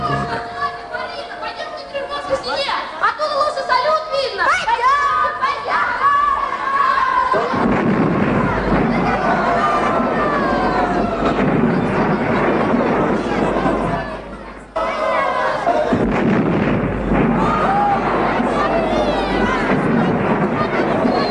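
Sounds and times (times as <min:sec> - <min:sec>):
large noisy crowd chatter and cheering: 0:00.0 - 0:21.2
celebratory fireworks booming and crackling: 0:07.4 - 0:14.9, 0:15.6 - 0:21.2.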